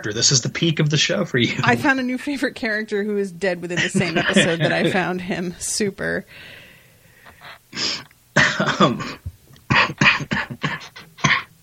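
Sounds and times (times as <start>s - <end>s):
speech: 0.0s - 6.6s, 7.4s - 9.2s
laughter: 3.6s - 5.4s
harsh raspy coughing fit: 7.8s - 11.6s.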